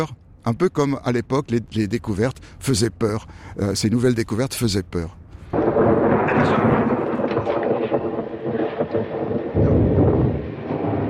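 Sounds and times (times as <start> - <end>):
speech: 0.0 - 5.2, 5.8 - 6.9
wind: 0.0 - 11.0
deep rolling thunder during a storm: 5.5 - 11.0
rain: 5.5 - 11.0.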